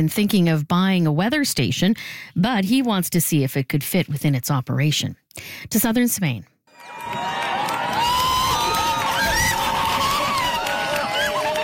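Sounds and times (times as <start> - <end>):
speech: 0.0 - 7.2
crowd cheering during total solar eclipse: 6.7 - 11.6
people shouting excitedly: 6.8 - 11.6.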